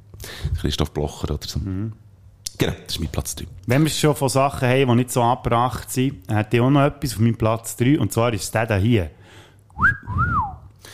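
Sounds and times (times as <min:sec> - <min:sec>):
speech: 0:00.6 - 0:02.0, 0:02.6 - 0:10.2
two-part wolf whistle: 0:09.8 - 0:10.6.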